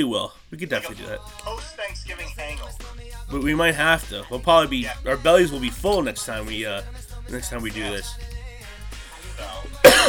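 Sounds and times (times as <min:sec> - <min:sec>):
speech: 0:00.0 - 0:02.3, 0:03.3 - 0:08.3
person coughing: 0:09.4 - 0:10.0.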